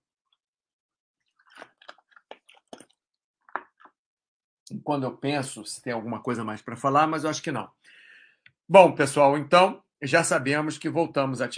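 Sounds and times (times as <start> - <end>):
person sipping and swallowing water: 1.2 - 4.0
speech: 4.7 - 8.0, 8.7 - 11.5.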